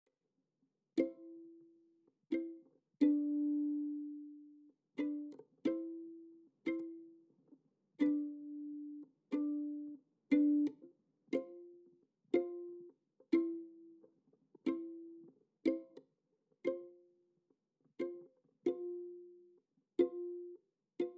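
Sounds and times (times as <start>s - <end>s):
violin stem: 1.0s - 17.2s, 17.9s - 21.1s.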